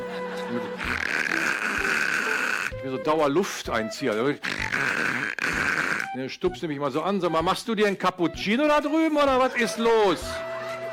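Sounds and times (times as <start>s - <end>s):
voice imitating snoring: 0.8s - 2.8s, 4.4s - 6.2s
speech: 2.9s - 5.1s, 6.2s - 10.4s.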